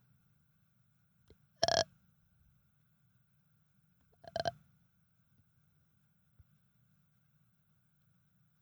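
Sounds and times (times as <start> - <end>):
burping into the microphone: 1.6 - 1.8, 4.2 - 4.5.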